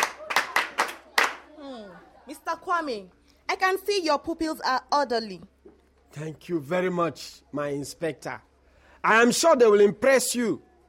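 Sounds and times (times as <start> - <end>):
children clapping hands in unison: 0.0 - 1.5
speech: 2.3 - 5.5, 6.1 - 10.7.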